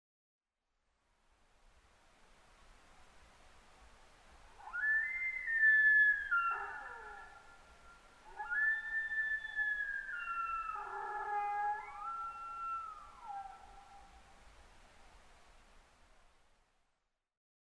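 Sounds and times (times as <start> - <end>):
Sika deer high wavering whistles: 4.7 - 7.2, 8.4 - 13.0.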